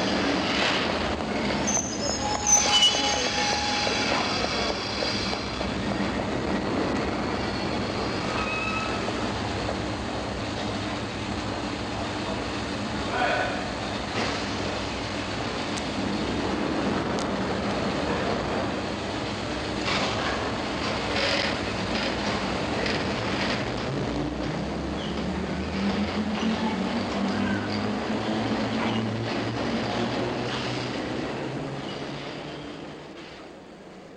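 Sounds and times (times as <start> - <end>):
underground train rumbling into a station platform: 0.0 - 34.1
underground train wheels and brakes squealing: 1.4 - 5.6, 7.3 - 9.2, 31.8 - 32.8.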